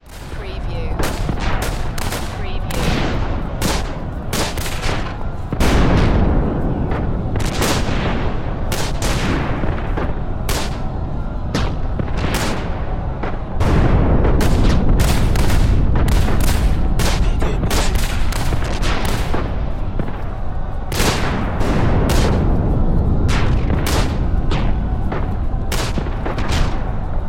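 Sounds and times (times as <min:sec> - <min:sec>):
World War One battlefield explosions: 0:00.0 - 0:27.2
World War One battlefield guns: 0:00.1 - 0:10.9, 0:11.5 - 0:27.2.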